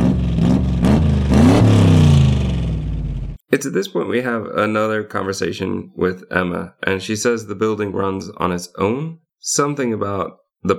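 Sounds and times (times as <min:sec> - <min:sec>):
garbage truck engine rumbling and revving: 0:00.0 - 0:03.4
speech: 0:03.5 - 0:10.7.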